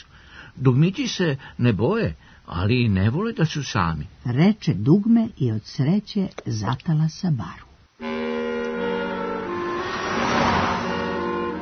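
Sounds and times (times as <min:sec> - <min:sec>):
speech: 0:00.6 - 0:07.6
car engine hum passing by: 0:08.0 - 0:11.5
tires splashing water from the wet roadway: 0:09.4 - 0:11.5.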